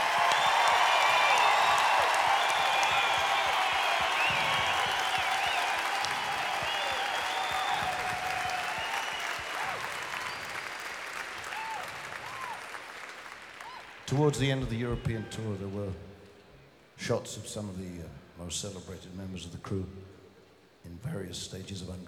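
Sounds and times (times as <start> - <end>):
scattered cheers and whistles from the audience: 0.0 - 14.0
large audience applauding the crew: 0.0 - 15.6
speech: 14.2 - 16.1, 17.0 - 20.1, 21.0 - 22.0.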